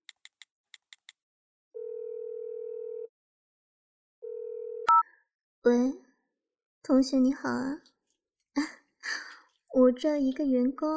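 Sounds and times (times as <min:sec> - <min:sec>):
long steady phone ringing tone: 0:01.8 - 0:03.1, 0:04.2 - 0:05.0
speech: 0:05.6 - 0:06.0, 0:06.9 - 0:07.9, 0:08.6 - 0:09.2, 0:09.8 - 0:10.9.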